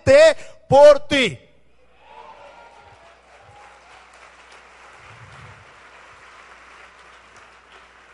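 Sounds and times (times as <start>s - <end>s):
speech: 0.1s - 1.4s
crowd applause: 2.2s - 8.1s.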